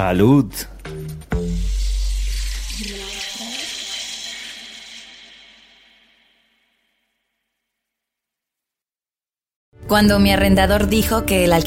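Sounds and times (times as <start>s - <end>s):
speech: 0.0s - 0.7s, 9.9s - 11.6s
michelada mix pouring into beer in a glass: 1.6s - 6.8s.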